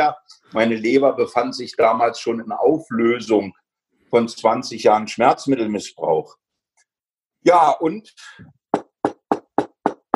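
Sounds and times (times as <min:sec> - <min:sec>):
speech: 0:00.5 - 0:06.4, 0:07.4 - 0:08.6
knocks on wood: 0:08.7 - 0:10.1.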